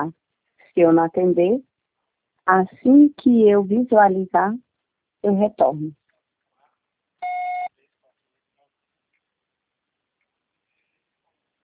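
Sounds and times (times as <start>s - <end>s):
speech: 0.0s - 0.2s, 0.8s - 1.7s, 2.5s - 4.6s, 5.2s - 6.0s
single electronic voicemail beep on a mobile phone: 7.2s - 7.7s.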